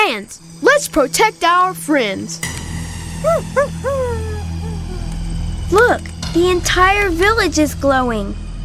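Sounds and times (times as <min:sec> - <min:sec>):
speech: 0:00.1 - 0:02.6, 0:03.2 - 0:04.2, 0:05.7 - 0:08.4
dog yipping and whining a warning: 0:03.3 - 0:05.1.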